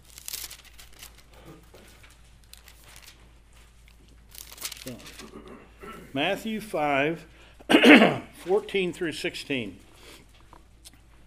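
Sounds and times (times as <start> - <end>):
thin Bible paper pages being turned: 0.0 - 5.3
speech: 4.9 - 9.9.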